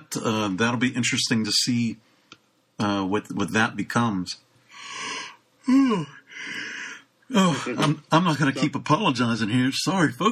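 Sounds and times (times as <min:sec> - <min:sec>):
speech: 0:00.1 - 0:02.1, 0:02.8 - 0:05.0, 0:05.6 - 0:06.6, 0:07.3 - 0:10.3
person yawning: 0:04.9 - 0:07.8.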